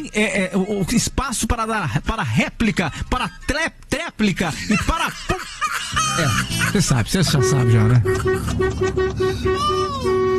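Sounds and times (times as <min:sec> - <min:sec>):
speech: 0:00.0 - 0:05.4, 0:06.0 - 0:10.3
laughter: 0:04.4 - 0:08.6
car horn honking in the street: 0:06.6 - 0:10.3.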